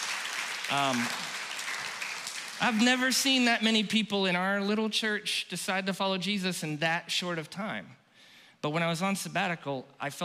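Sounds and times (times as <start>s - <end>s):
crowd applauding: 0.0s - 3.5s
speech: 0.7s - 1.4s, 2.6s - 8.0s, 8.6s - 10.2s.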